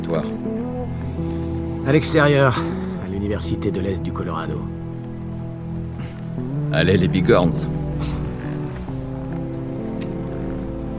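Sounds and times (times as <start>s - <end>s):
speech: 0.1s - 4.8s, 6.7s - 8.1s
horse hooves clip-clopping: 7.5s - 10.9s.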